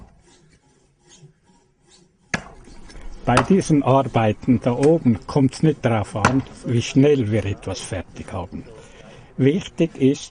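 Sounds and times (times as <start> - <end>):
hand saw rasping through wood: 0.0 - 4.8
speech: 3.2 - 10.2.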